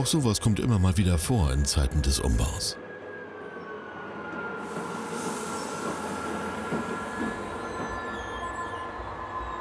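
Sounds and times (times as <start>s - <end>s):
speech: 0.0s - 2.8s
old shunting locomotive wheels squealing: 4.7s - 9.5s.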